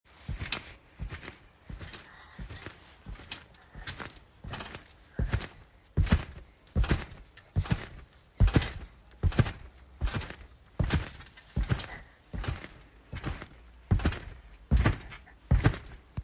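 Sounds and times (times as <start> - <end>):
jumping on a trampoline: 0.1 - 16.2.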